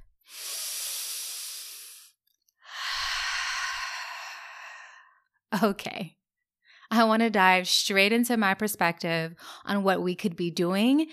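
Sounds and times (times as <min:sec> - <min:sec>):
deep breath: 0:00.2 - 0:05.3
speech: 0:05.5 - 0:06.2, 0:06.9 - 0:11.1.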